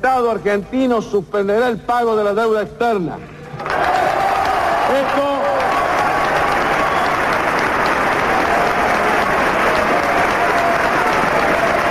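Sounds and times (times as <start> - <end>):
speech: 0.0 - 3.3, 4.9 - 5.4
large crowd in Argentina applauding and cheering in support of a president: 3.4 - 11.8.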